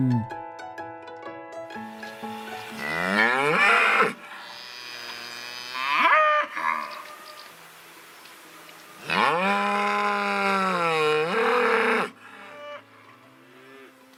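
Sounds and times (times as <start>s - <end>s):
cow mooing: 2.7s - 7.1s, 9.0s - 14.0s.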